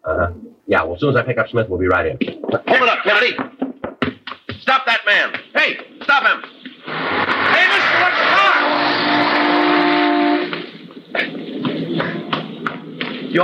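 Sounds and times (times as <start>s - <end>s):
speech: 1.0s - 3.5s, 4.7s - 6.5s
excited voices: 2.6s - 3.4s, 7.3s - 9.4s
car roaring past: 6.8s - 10.6s
tires screeching: 6.8s - 13.4s.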